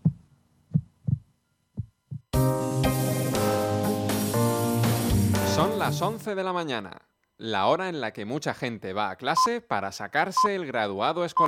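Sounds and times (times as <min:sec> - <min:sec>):
deep heartbeat thumps: 0:00.0 - 0:02.4
music: 0:02.3 - 0:06.3
speech: 0:05.9 - 0:11.4.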